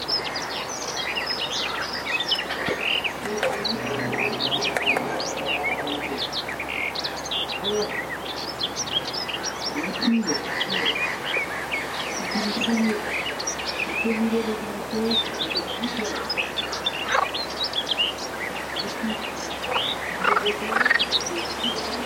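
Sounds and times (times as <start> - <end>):
garden warbler singing: 0.0 - 22.0.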